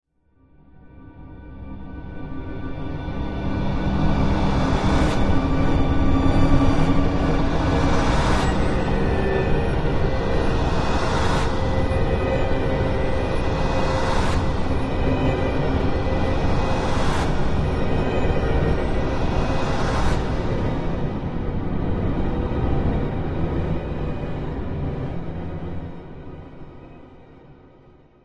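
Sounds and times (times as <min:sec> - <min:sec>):
eerie orchestral music: 0:01.2 - 0:27.4.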